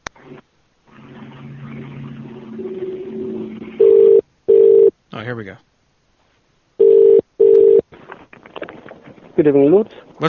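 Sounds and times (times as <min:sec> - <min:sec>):
humming phone line noise: 0:00.0 - 0:04.9
speech: 0:05.2 - 0:05.7, 0:09.4 - 0:10.2
telephone keypad tones through a phone line: 0:06.8 - 0:07.8.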